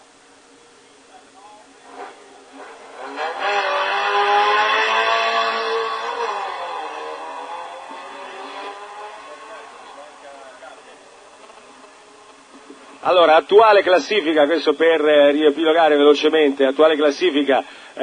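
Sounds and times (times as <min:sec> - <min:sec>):
rally car engine revving hard: 0:01.8 - 0:13.0
speech: 0:13.1 - 0:18.0.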